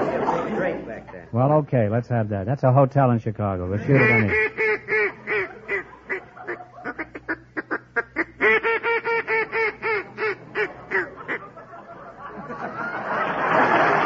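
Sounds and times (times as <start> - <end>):
speech: 0.7 - 4.8
laughter: 3.7 - 7.3, 8.7 - 14.0
duck call blown in sharp nasal quacks: 3.9 - 11.5.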